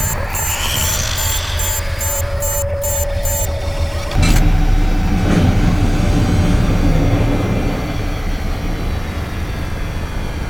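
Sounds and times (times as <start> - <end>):
pulsing high electronic tones: 0.0 - 4.2
spacecraft engine roaring after restart: 0.0 - 10.4.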